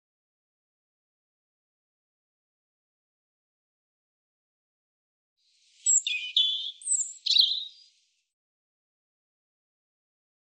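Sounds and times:
European robin singing thin high sliding whistles and warbled notes: 0:05.8 - 0:07.8.

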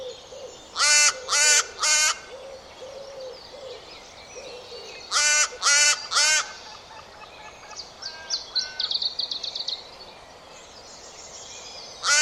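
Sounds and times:
harsh bird calls: 0:00.0 - 0:09.3, 0:11.9 - 0:12.2
quiet background hiss: 0:00.0 - 0:12.2.

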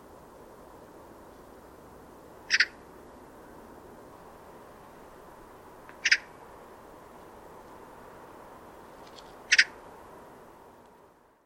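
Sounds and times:
background hiss: 0:00.0 - 0:11.4
bird chirps: 0:02.5 - 0:02.8, 0:06.0 - 0:06.3, 0:09.5 - 0:09.8.

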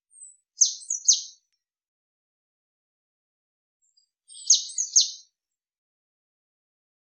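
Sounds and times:
Eurasian blue tit calling: 0:00.6 - 0:01.4, 0:04.3 - 0:05.2.

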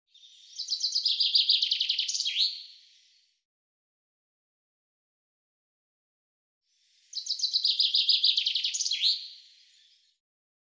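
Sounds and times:
common chaffinch singing: 0:00.2 - 0:02.6, 0:07.1 - 0:09.9.

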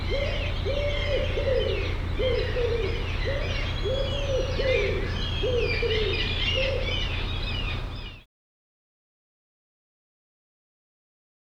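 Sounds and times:
low hooting arched bird calls: 0:00.0 - 0:08.2
steady low hum: 0:00.0 - 0:08.2.

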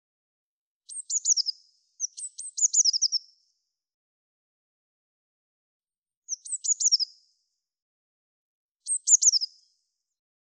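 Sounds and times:
Eurasian blue tit singing: 0:00.9 - 0:03.3, 0:06.3 - 0:07.2, 0:08.8 - 0:09.7.

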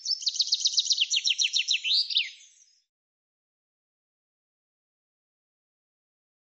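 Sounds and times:
common chaffinch singing: 0:00.0 - 0:02.9.

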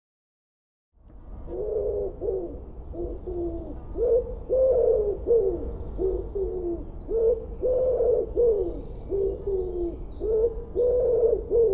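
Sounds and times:
bird calls with low mellow cooing or hooting notes: 0:01.5 - 0:11.7.

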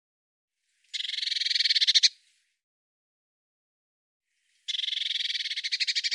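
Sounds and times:
Eurasian blue tit churring call: 0:01.0 - 0:02.1, 0:04.7 - 0:06.1.

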